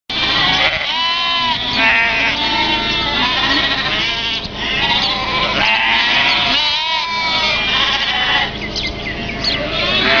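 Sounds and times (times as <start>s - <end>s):
sheep bleating: 0.1s - 8.6s, 9.5s - 10.1s.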